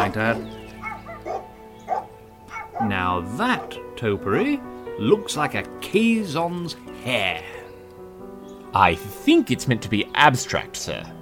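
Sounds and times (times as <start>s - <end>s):
speech: 0.0s - 0.6s, 2.8s - 7.6s, 8.7s - 11.1s
dog barking down the street: 0.8s - 2.9s, 3.6s - 3.8s.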